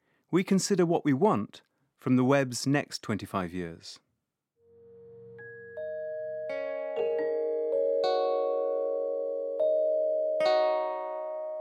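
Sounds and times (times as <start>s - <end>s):
speech: 0.3s - 4.0s
bell-like chimes and musical notes sonifying live online encyclopedia edits: 4.6s - 11.6s.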